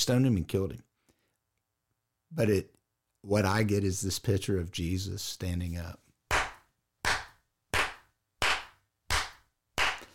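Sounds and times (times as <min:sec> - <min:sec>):
speech: 0:00.0 - 0:00.9, 0:02.3 - 0:06.0
hand claps: 0:06.3 - 0:10.1.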